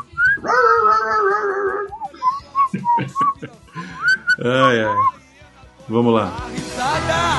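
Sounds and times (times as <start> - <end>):
dog giving short squeaky yelps: 0.0 - 2.1
laughter: 2.5 - 5.1
speech: 4.4 - 5.2, 5.9 - 7.2.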